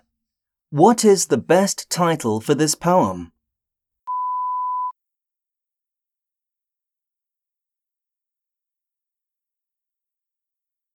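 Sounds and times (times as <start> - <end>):
speech: 0.7 - 3.4
single steady mid-pitched electronic beep: 4.1 - 4.9.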